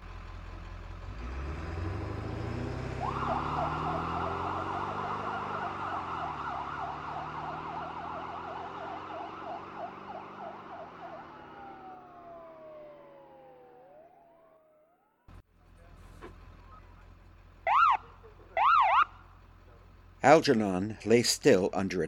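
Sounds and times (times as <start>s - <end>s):
ambulance engine rumble: 0.0s - 22.0s
ambulance siren wailing as the vehicle speeds away: 2.1s - 15.3s, 17.6s - 19.2s
speech: 20.2s - 22.0s.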